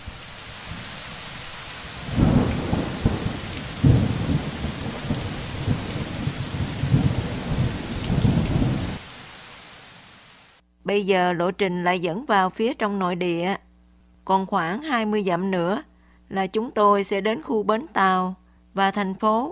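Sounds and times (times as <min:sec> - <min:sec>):
loud thunder rumbling: 0:00.0 - 0:09.3
heavy rain pouring: 0:00.0 - 0:10.6
speech: 0:10.9 - 0:13.6, 0:14.3 - 0:19.5.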